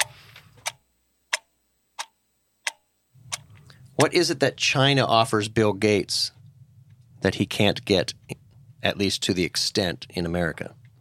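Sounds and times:
small clock ticking: 0.0 - 3.4
low rumble: 3.2 - 11.0
speech: 4.0 - 6.4, 7.2 - 10.8.

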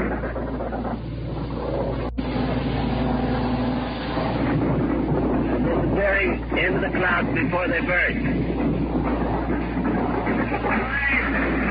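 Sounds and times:
propeller plane engine droning overhead: 0.0 - 11.6
speech: 6.2 - 8.7.

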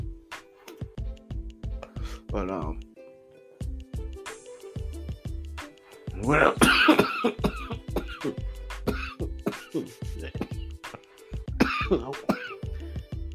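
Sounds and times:
speech: 2.2 - 2.9, 6.2 - 7.5, 8.2 - 8.5, 11.9 - 12.4
throat clearing: 6.6 - 12.6
person coughing: 6.6 - 12.7.

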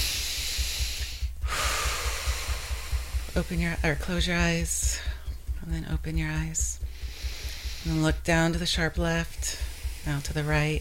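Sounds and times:
big deep breaths during an Emotional Freedom Technique session: 0.0 - 10.7
speech: 3.4 - 6.8, 7.8 - 10.7.

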